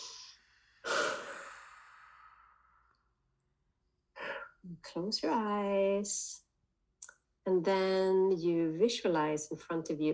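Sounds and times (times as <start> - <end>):
deep cleansing breath exhale during a guided relaxation exercise: 0.0 - 3.0
speech: 4.6 - 6.4, 7.4 - 10.1.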